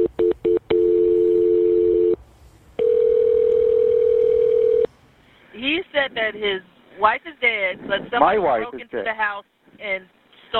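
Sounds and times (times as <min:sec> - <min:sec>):
telephone dialing beeps: 0:00.0 - 0:02.2, 0:02.8 - 0:04.9
speech: 0:06.1 - 0:10.5.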